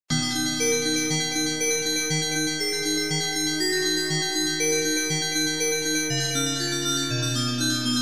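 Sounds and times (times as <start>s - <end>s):
ambient bell: 0.2s - 7.9s.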